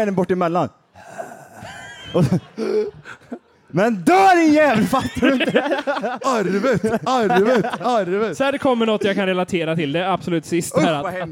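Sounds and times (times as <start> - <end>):
speech: 0.0 - 11.3
voice imitating shallow gasping breath of a dying person: 0.9 - 3.4
laughter: 1.5 - 3.7, 4.3 - 9.7.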